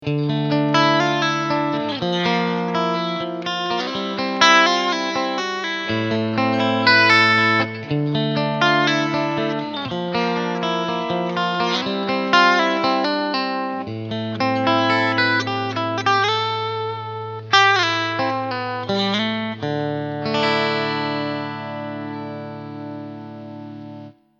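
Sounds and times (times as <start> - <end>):
Fender Strat electric guitar: 0.0 - 24.2.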